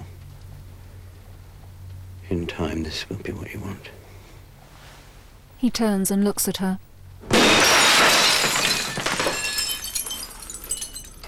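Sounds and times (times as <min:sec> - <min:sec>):
speech: 0:02.3 - 0:04.0, 0:05.6 - 0:07.7
glass fragments tinkling and clattering down: 0:07.3 - 0:11.2
glass in a hospital office door smashing: 0:07.3 - 0:11.2.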